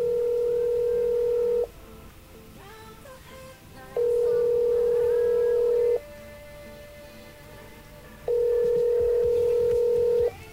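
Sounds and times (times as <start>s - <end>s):
incoming international collect telephone call ringing: 0.0s - 1.7s, 4.0s - 6.0s, 8.3s - 10.4s.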